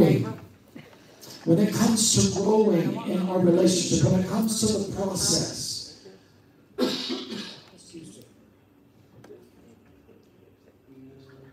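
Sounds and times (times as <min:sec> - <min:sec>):
speech: 0:01.4 - 0:05.7
rasping cough: 0:06.8 - 0:07.7.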